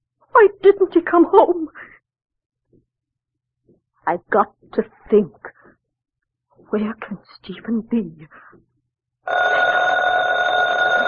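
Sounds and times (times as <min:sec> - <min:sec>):
speech: 0:00.4 - 0:01.9, 0:04.0 - 0:05.5, 0:06.7 - 0:08.7, 0:09.3 - 0:10.4
telephone bell ringing: 0:09.3 - 0:11.0.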